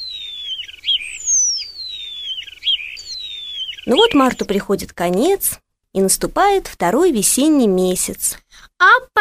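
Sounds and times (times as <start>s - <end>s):
starling singing: 0.0s - 5.4s
speech: 3.9s - 9.2s.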